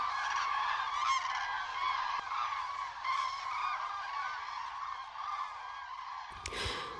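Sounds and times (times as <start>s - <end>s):
flock of common cranes trumpeting: 0.0s - 6.9s.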